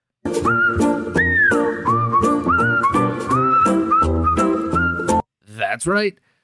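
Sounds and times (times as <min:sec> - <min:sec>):
full musical backing with steady rhythmic hits: 0:00.2 - 0:05.2
whistled segment jingle tune: 0:00.3 - 0:05.2
speech: 0:05.7 - 0:06.3.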